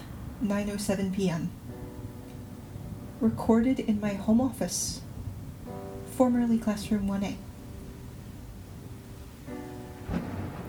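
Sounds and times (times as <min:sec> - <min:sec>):
soft rain: 0:00.0 - 0:10.6
speech: 0:00.4 - 0:01.6, 0:03.2 - 0:05.0, 0:05.7 - 0:07.5
distant thunderstorm thunder rumbling: 0:07.6 - 0:10.6.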